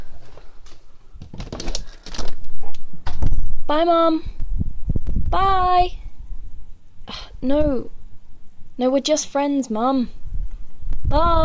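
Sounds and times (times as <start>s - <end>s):
window clicking and rattling as it is pushed open: 1.2s - 2.5s
speech: 3.7s - 4.4s, 5.3s - 6.0s, 7.4s - 8.0s, 8.8s - 10.2s, 11.1s - 11.4s.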